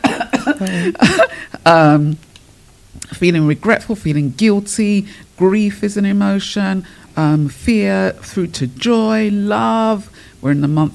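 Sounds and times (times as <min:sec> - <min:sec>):
person coughing: 0:00.0 - 0:01.6
speech: 0:00.6 - 0:02.3, 0:03.1 - 0:10.9.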